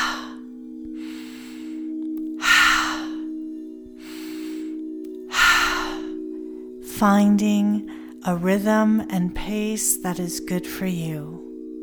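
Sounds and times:
sharp inhales through the nose during a breathing exercise: 0:00.0 - 0:03.3, 0:04.0 - 0:06.3
constant low hum: 0:00.0 - 0:11.8
speech: 0:07.0 - 0:11.5.

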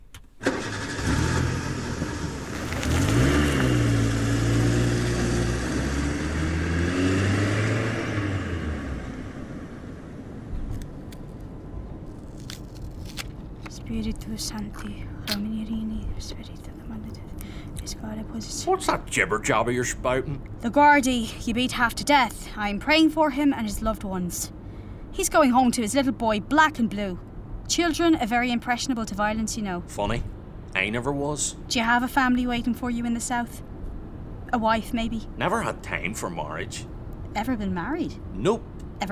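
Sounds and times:
car engine starting and revving through its gears as car pulls away: 0:00.4 - 0:10.6
speech: 0:14.2 - 0:15.4, 0:16.2 - 0:24.6, 0:25.2 - 0:33.7, 0:34.5 - 0:39.0.

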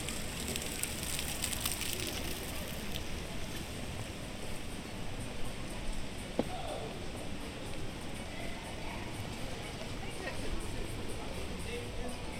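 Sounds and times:
fountain splashing in a busy pedestrian square: 0:00.0 - 0:03.3
voices of passers-by murmuring: 0:00.0 - 0:12.3.

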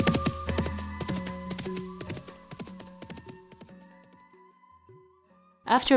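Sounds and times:
horse hooves clip-clopping as rider rides away: 0:00.0 - 0:04.2
speech: 0:05.7 - 0:05.9.

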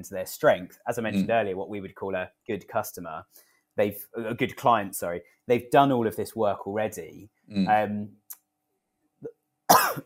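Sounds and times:
speech: 0:00.0 - 0:08.2
faint small throat sound: 0:01.1 - 0:01.4, 0:07.5 - 0:07.8
sharp harsh cough: 0:09.7 - 0:10.0.

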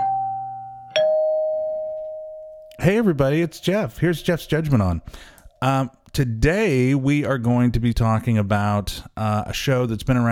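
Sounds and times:
two-tone doorbell chime: 0:00.0 - 0:02.8
speech: 0:02.8 - 0:10.3.

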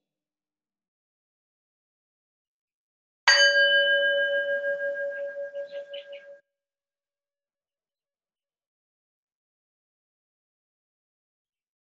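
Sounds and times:
single bell struck and ringing: 0:03.3 - 0:06.4.

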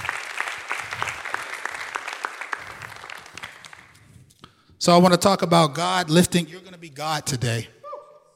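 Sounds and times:
crowd applauding: 0:00.0 - 0:04.2
speech: 0:04.8 - 0:07.8.

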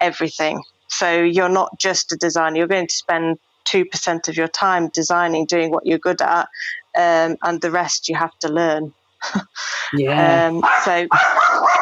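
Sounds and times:
speech: 0:00.0 - 0:11.7
dog barking at someone at the door: 0:10.6 - 0:11.8.

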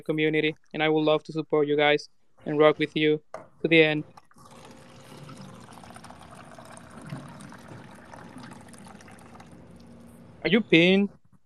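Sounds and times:
speech: 0:00.0 - 0:04.2, 0:10.4 - 0:11.2
water pouring into a container: 0:04.2 - 0:10.0.

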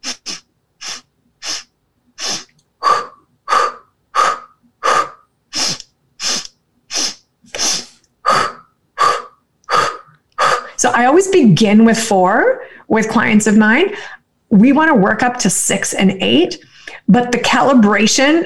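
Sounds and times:
forceful mouth exhales in pulse breathing: 0:00.0 - 0:10.7
sharp short nasal inhales in pulse breathing: 0:00.0 - 0:10.8
speech: 0:10.8 - 0:18.4.

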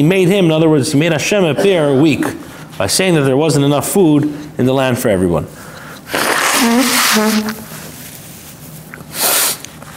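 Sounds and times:
speech: 0:00.0 - 0:07.7
person sneezing during pollen season in New York: 0:06.1 - 0:07.7.

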